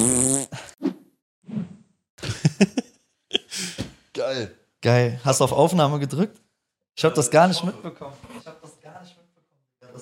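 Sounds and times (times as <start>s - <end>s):
buzzy fart sound effect: 0.0s - 0.5s
laughter: 2.2s - 3.6s
speech: 4.2s - 6.4s, 7.0s - 8.6s.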